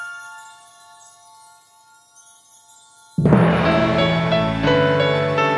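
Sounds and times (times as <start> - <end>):
weird sword stinger: 3.2 - 5.5.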